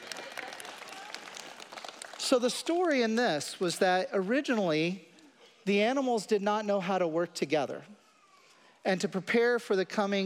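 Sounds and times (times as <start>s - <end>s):
crowd clapping: 0.0s - 3.1s
speech: 2.3s - 8.0s, 8.8s - 10.2s.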